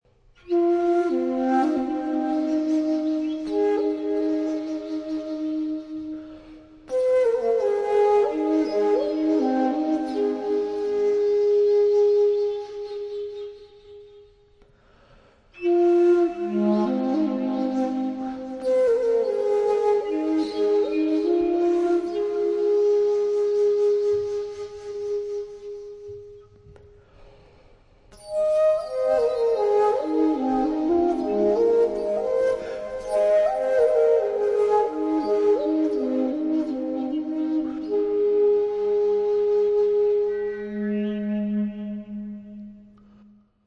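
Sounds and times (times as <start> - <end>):
ancient Anasazi flute playing: 0.4 - 14.3, 15.6 - 26.9, 28.2 - 43.4.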